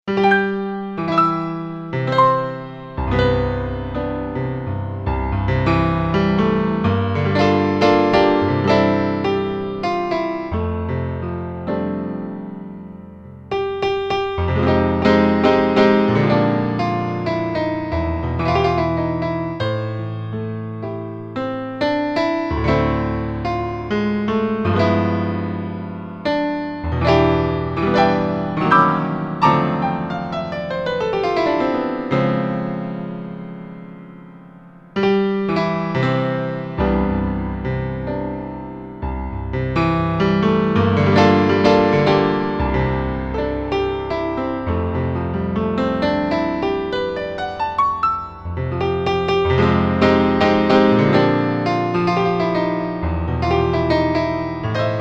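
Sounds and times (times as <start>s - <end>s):
warm and clear stereo jazz piano: 0.1s - 54.9s.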